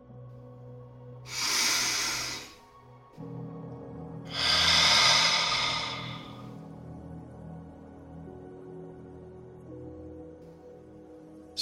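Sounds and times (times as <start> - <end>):
deep inhale and slow exhale during a guided gratitude meditation: 1.3 - 2.8, 4.3 - 6.6.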